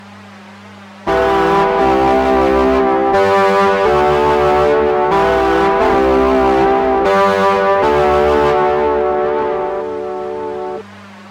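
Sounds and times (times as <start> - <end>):
distorted chorus: 1.1 - 10.8
piano: 1.1 - 10.8.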